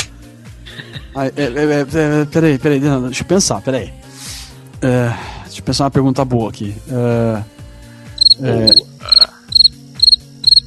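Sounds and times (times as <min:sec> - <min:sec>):
speech: 0:01.2 - 0:04.0, 0:04.8 - 0:07.6, 0:08.4 - 0:08.8
cricket chirping in quick trills: 0:08.2 - 0:10.6.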